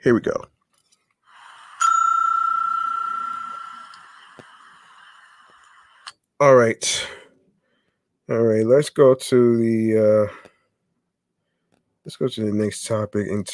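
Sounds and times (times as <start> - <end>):
speech: 0.0 - 0.5, 6.4 - 7.2, 8.3 - 10.4, 12.0 - 13.5
bell struck with a bright clear tone: 1.8 - 4.2.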